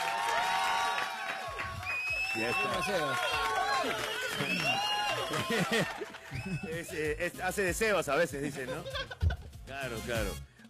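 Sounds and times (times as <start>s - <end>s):
audience clapping: 0.0s - 6.9s
speech: 2.4s - 10.6s
laughter: 3.8s - 7.2s, 8.4s - 9.5s.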